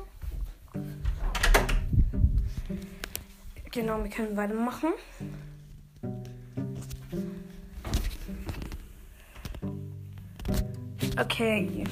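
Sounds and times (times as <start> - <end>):
faint shuffling: 0.0 - 1.2, 1.9 - 11.8
wooden door being pushed shut: 1.1 - 1.9
speech: 3.7 - 5.4, 11.2 - 11.8.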